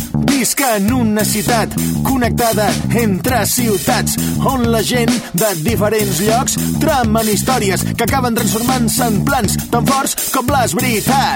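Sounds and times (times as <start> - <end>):
rap jingle for a Catalan spot: 0.2 - 11.3.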